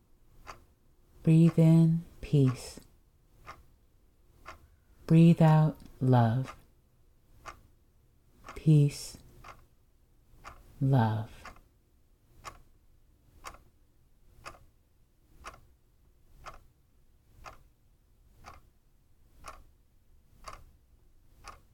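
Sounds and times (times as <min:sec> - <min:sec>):
clock ticking: 0:00.4 - 0:03.7, 0:04.4 - 0:06.7, 0:07.4 - 0:07.7, 0:08.4 - 0:09.7, 0:10.4 - 0:11.7, 0:12.4 - 0:12.8, 0:13.4 - 0:13.8, 0:14.4 - 0:14.8, 0:15.4 - 0:15.8, 0:16.4 - 0:16.8, 0:17.4 - 0:18.7, 0:19.4 - 0:21.7
speech: 0:01.2 - 0:02.8, 0:05.1 - 0:06.6, 0:08.6 - 0:09.2, 0:10.8 - 0:11.4.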